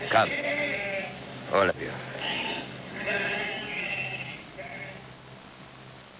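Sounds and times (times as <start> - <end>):
sheep bleating: 0.0 - 1.2, 2.1 - 5.1
speech: 0.1 - 0.5, 1.5 - 2.4.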